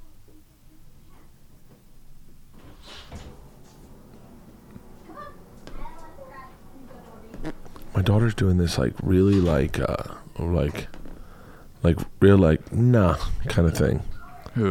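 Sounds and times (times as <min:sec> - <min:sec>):
door pulled open by a young girl: 0:02.6 - 0:05.6
indistinct voices murmuring: 0:03.8 - 0:10.9
speech: 0:08.0 - 0:11.0, 0:11.8 - 0:14.6.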